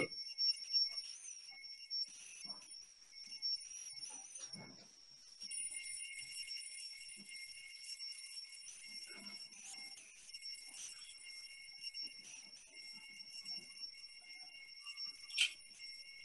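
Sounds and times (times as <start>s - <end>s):
alarm clock ringing with a thin high-pitched electronic ring: 0.0s - 16.2s.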